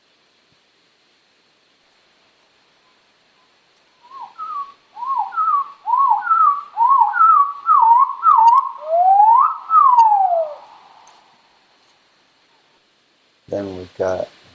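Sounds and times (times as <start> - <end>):
chestnut-sided warbler song slowed down: 2.8 - 11.2
speech: 13.6 - 14.5.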